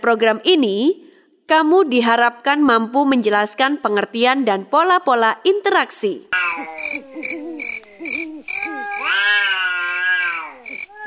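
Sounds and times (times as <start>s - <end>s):
speech: 0.0s - 7.1s
cat meowing and yowling behind a house: 6.4s - 11.0s.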